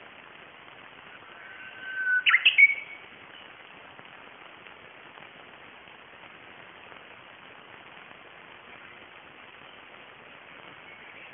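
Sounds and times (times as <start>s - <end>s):
Japanese bush warbler singing: 1.2s - 3.6s.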